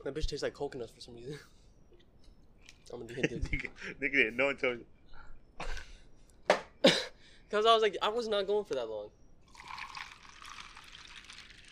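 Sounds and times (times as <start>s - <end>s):
speech: 0.0s - 1.6s, 2.9s - 5.0s, 7.5s - 9.2s
liquid pouring into a glass or cup: 9.4s - 11.7s.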